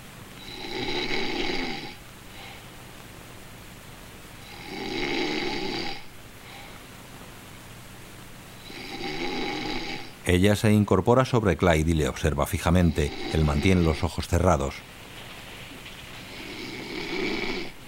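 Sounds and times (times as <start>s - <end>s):
man snoring while sleeping in a tourist motel room: 0.4s - 2.5s, 4.4s - 6.1s, 8.6s - 10.2s, 12.8s - 14.0s, 16.3s - 17.8s
speech: 10.3s - 15.0s.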